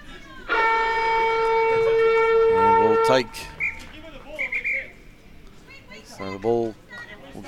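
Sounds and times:
crowd noise at a rugby league match: 0.0s - 7.4s
quarter-time siren blaring at a rugby league match: 0.5s - 3.8s
speech: 3.1s - 3.6s, 6.2s - 6.8s.

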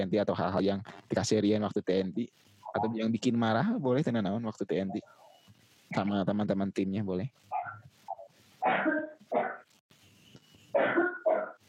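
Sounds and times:
speech: 0.0s - 5.2s, 5.9s - 7.6s, 8.6s - 9.0s
harsh raspy coughs: 8.6s - 9.6s, 10.8s - 11.6s.

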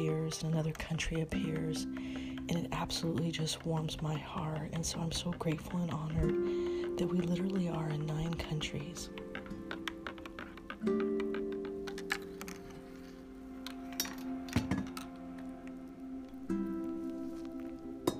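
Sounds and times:
speech: 0.0s - 9.3s, 10.8s - 11.1s
taps and clinks of the coffee cup: 9.2s - 15.5s, 16.9s - 18.1s.

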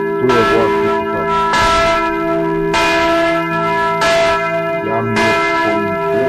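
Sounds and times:
church bells ringing: 0.0s - 6.2s
speech: 0.2s - 1.0s.

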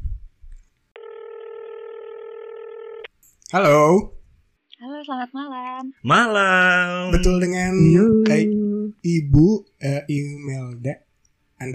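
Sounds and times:
faint noise: 0.0s - 11.7s
telephone line tone as a call is placed: 1.0s - 3.1s
speech: 3.5s - 4.2s, 5.0s - 11.7s.

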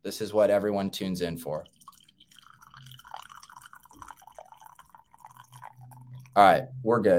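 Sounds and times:
speech: 0.0s - 1.8s, 6.4s - 7.1s
coffee pouring with small splashy drips: 1.4s - 6.5s.

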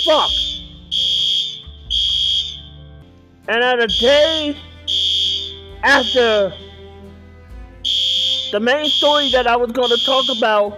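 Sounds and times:
speech: 0.0s - 0.4s, 3.5s - 4.7s, 5.8s - 6.6s, 7.9s - 10.7s
building fire alarm blaring in piercing electronic pulses: 0.0s - 2.9s, 3.9s - 5.6s, 7.9s - 10.6s.

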